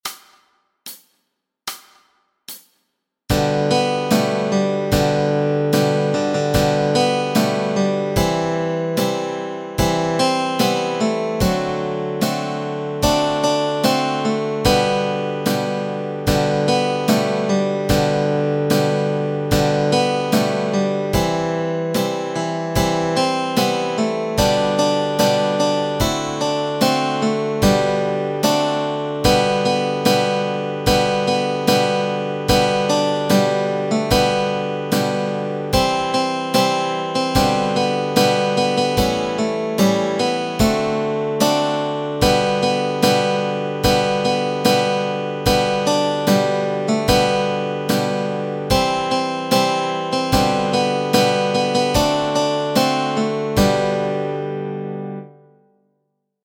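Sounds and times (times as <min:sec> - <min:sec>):
melody and chords: 0:03.3 - 0:55.6.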